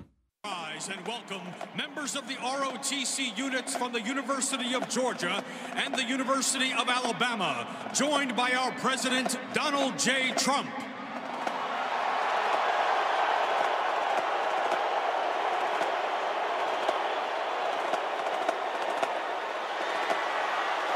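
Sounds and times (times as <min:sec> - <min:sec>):
stadium crowd booing: 0:00.5 - 0:07.0, 0:10.8 - 0:20.9
stadium crowd at a national championship football game cheering: 0:00.5 - 0:20.9
speech: 0:00.8 - 0:10.9.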